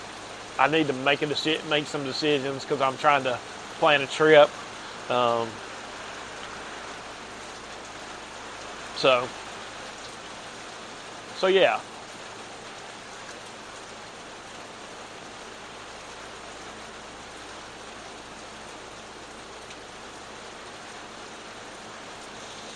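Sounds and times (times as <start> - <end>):
light rain falling on a surface: 0.0 - 22.7
speech: 0.6 - 5.6, 9.0 - 9.4, 11.4 - 11.9.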